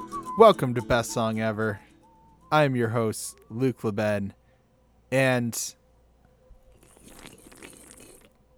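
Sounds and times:
speech: 0.4s - 1.9s, 2.5s - 4.4s, 5.1s - 5.8s
person sipping beer: 6.7s - 8.5s.

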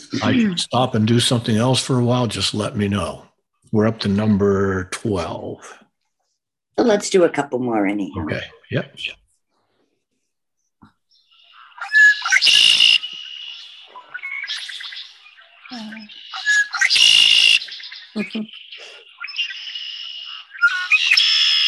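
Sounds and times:
laughter: 0.0s - 3.2s, 3.8s - 5.7s
speech: 0.1s - 5.8s, 6.8s - 9.2s, 18.2s - 18.6s
red-winged blackbird song: 11.1s - 21.6s.

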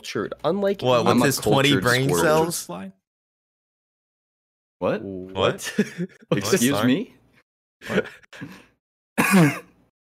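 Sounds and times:
speech: 0.0s - 3.0s, 4.8s - 7.2s, 7.8s - 9.7s
laughter: 5.6s - 6.6s, 7.8s - 8.6s
loud coughing into an unmuted microphone: 9.2s - 9.9s.

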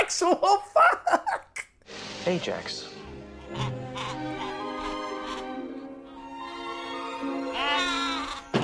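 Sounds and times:
speech: 0.2s - 1.2s, 2.2s - 2.9s
sheep bleating: 3.4s - 5.5s, 7.4s - 8.5s.

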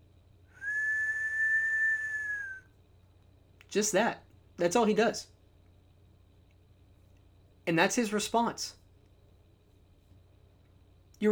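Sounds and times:
faint low hum: 0.0s - 11.3s
man whistling a single steady note: 0.5s - 2.8s
speech: 3.7s - 5.3s, 7.7s - 8.8s.

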